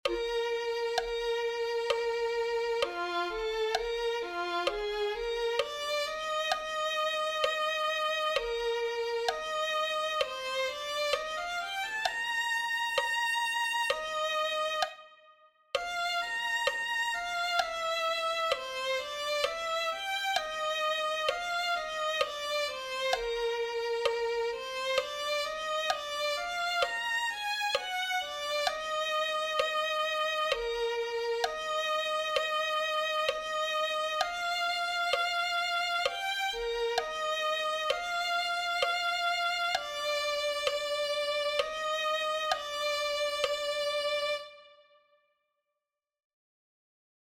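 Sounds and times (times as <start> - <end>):
violin playing: 0.0 - 45.0.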